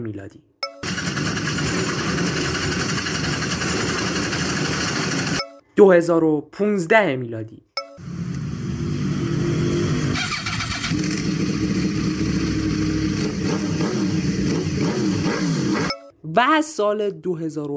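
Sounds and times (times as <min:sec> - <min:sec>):
speech: 0:00.0 - 0:01.4, 0:05.8 - 0:08.2, 0:16.4 - 0:17.7
small Pride car engine in Iran revving: 0:00.8 - 0:05.3, 0:08.0 - 0:15.9.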